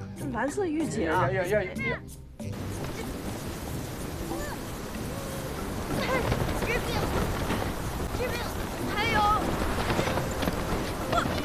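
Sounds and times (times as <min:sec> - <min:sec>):
voices talking: 0:00.2 - 0:11.4
strong wind buffeting the microphone outdoors: 0:02.6 - 0:11.4.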